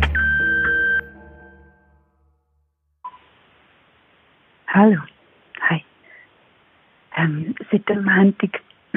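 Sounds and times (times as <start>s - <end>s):
answering machine beep tone: 0.1s - 1.1s
speech: 4.7s - 5.9s, 7.2s - 8.9s.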